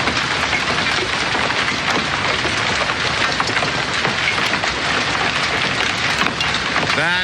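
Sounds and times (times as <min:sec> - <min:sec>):
hail pelting down hard on hard surfaces in a backyard: 0:00.0 - 0:07.2.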